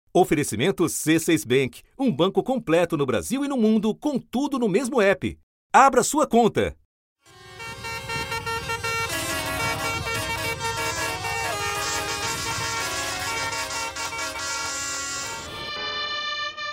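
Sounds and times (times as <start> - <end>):
speech: 0.2 - 6.8
hundreds of tractor horns honking at a protest: 7.2 - 16.7
heavy farm vehicle engines rumbling: 7.3 - 16.0.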